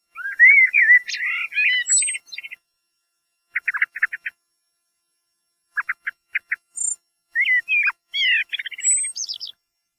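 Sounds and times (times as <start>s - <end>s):
common blackbird giving warbled and squeaky phrases: 0.2s - 2.6s, 3.5s - 4.3s, 5.8s - 9.6s.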